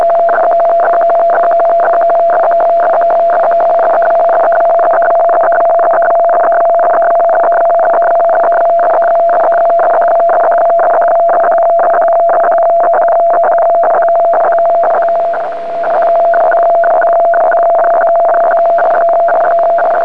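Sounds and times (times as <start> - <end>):
weather fax radio signal: 0.0 - 20.0.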